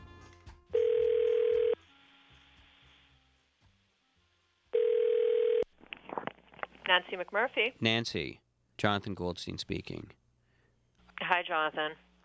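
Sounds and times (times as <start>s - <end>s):
telephone dial tone: 0.7s - 1.7s, 4.7s - 5.7s
speech: 6.9s - 10.2s, 11.3s - 12.2s.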